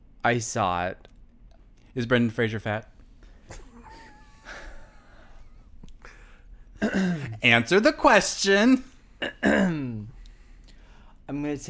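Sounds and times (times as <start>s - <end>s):
speech: 0.2s - 1.1s, 2.0s - 2.9s, 6.9s - 10.0s, 11.3s - 11.6s
throat clearing: 9.2s - 10.0s.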